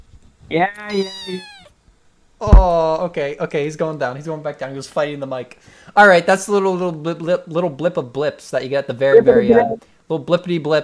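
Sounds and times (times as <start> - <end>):
faint low noise: 0.0 - 10.8
speech: 0.5 - 1.5, 2.4 - 10.8
cat meowing: 0.8 - 1.7.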